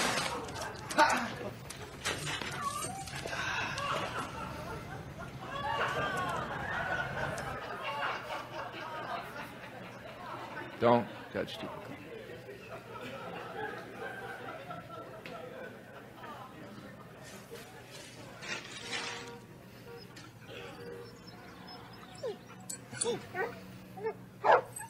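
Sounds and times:
indistinct chatter: 0.1 - 24.8
laughter: 3.2 - 24.3
speech: 10.8 - 12.1
dog whimpering: 20.0 - 24.8
dog barking and yipping: 21.2 - 24.8.

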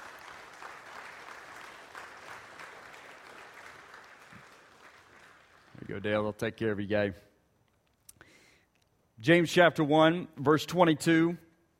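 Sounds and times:
audience applause: 0.0 - 6.0
speech: 5.9 - 7.3, 9.2 - 11.4.

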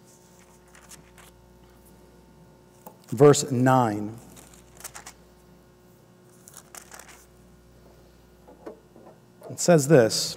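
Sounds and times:
thin Bible pages turning: 0.1 - 1.9, 4.2 - 5.2, 6.3 - 7.3
speech: 3.1 - 4.3, 9.6 - 10.3.

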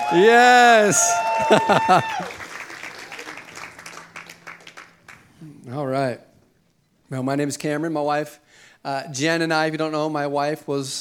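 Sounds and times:
person cheering: 0.0 - 3.5
laughter: 0.0 - 4.2
audience applauding: 0.0 - 5.5
speech: 0.1 - 2.4, 5.7 - 6.3, 7.1 - 10.9.

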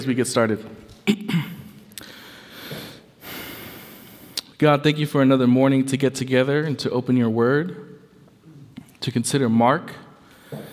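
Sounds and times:
speech: 0.0 - 1.5, 4.6 - 7.9, 9.0 - 10.7
rough throat clearing: 1.0 - 1.8
soft breathing: 2.0 - 4.4, 10.2 - 10.7.

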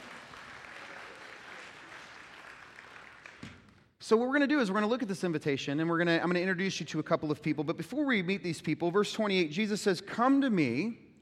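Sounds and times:
crowd applauding: 0.0 - 3.7
speech: 4.1 - 11.0.

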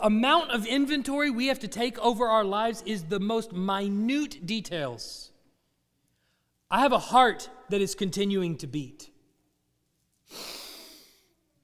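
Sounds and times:
speech: 0.0 - 5.3, 6.7 - 9.1, 10.3 - 10.6
person taking a long airy breath in: 10.3 - 11.4.

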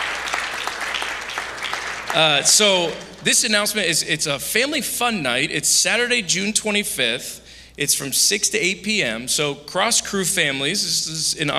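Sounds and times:
audience clapping for fathers: 0.0 - 3.4
speech: 2.1 - 11.5.

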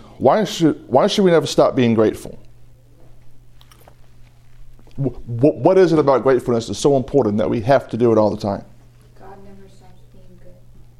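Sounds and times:
steady low hum: 0.0 - 10.9
speech: 0.2 - 2.4, 5.0 - 8.7
person sipping water: 3.6 - 5.2.

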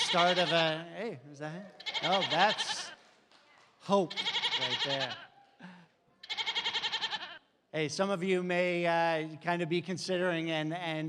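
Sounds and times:
goat bleating with a wavering tremble: 0.0 - 0.9, 1.8 - 3.0, 4.0 - 5.4, 6.2 - 7.5
speech: 0.1 - 2.9, 3.9 - 5.8, 7.7 - 11.0.

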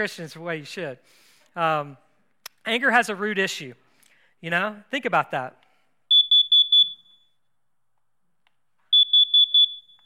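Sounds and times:
speech: 0.0 - 2.0, 2.6 - 3.8, 4.4 - 5.6
smoke alarm beeping: 6.1 - 7.6, 8.8 - 10.0.

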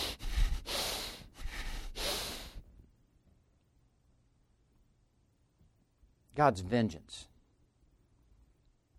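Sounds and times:
heavy angry breathing through the nostrils: 0.0 - 2.6
speech: 6.4 - 7.3.

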